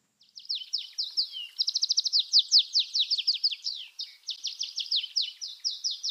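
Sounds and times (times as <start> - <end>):
Atlantic canary singing: 0.3 - 6.1.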